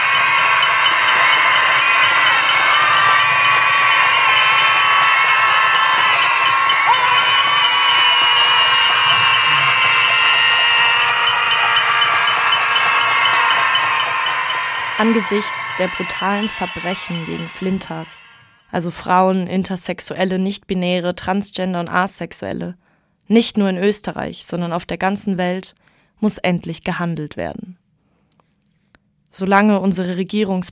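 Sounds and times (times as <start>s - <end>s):
large crowd of women screaming at a protest on Minoritenplatz in Austria: 0.0s - 18.5s
speech: 15.0s - 27.8s, 29.3s - 30.7s.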